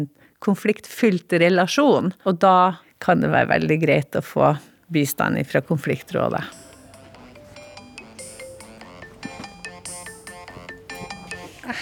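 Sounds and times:
speech: 0.0s - 6.6s
telephone ringing with an electronic melodic tone: 5.6s - 11.8s.

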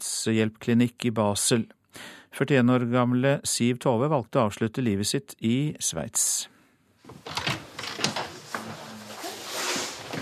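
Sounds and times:
speech: 0.2s - 7.5s
door low creak: 7.0s - 10.2s
door mechanism sharp mechanical clicks and knocks: 7.1s - 8.8s
door swinging open with a soft rising rush: 7.1s - 9.0s.

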